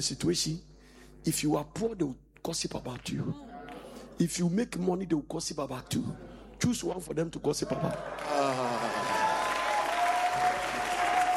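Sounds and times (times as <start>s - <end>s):
speech: 0.0s - 3.5s, 4.2s - 8.7s
audience clapping: 7.6s - 11.3s.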